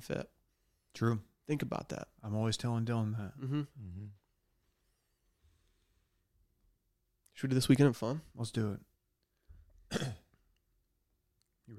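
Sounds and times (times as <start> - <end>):
speech: 0.0 - 0.4, 1.0 - 4.2, 7.4 - 8.9, 9.9 - 10.2
person coughing or clearing throat: 9.9 - 10.3.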